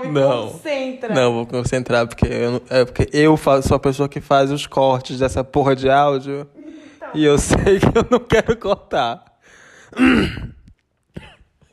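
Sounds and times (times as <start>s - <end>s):
speech: 0.0s - 9.3s, 9.9s - 10.6s
person clearing throat: 9.9s - 11.7s.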